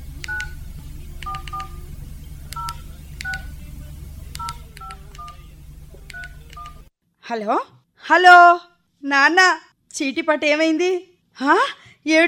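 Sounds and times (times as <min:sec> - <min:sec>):
steady low hum: 0:00.0 - 0:06.9
touch-tone beeps from dialing a telephone number on a keypad: 0:00.2 - 0:00.6, 0:01.2 - 0:01.8, 0:02.6 - 0:03.5, 0:04.4 - 0:05.4, 0:06.1 - 0:06.8
speech: 0:07.3 - 0:12.2.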